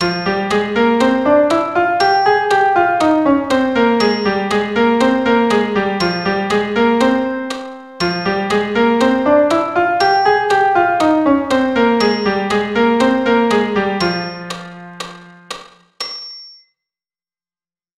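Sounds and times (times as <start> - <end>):
melodic FM synth: 0.2 - 15.8.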